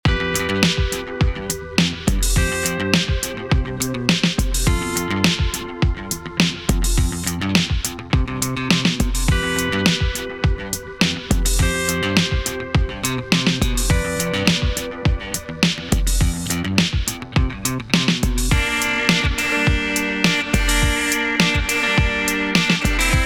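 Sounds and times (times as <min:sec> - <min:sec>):
drums: 0:00.0 - 0:23.2.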